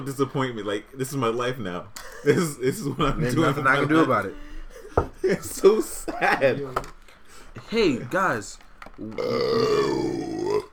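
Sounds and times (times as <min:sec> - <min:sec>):
speech: 0:00.0 - 0:07.0, 0:07.6 - 0:10.4
loud burp: 0:09.0 - 0:10.7.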